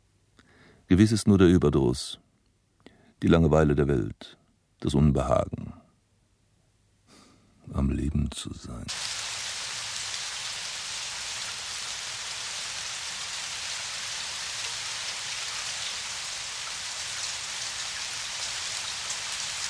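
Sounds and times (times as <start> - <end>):
speech: 0.9 - 2.2, 3.2 - 5.8, 7.7 - 9.0
steady rain falling: 8.9 - 19.6.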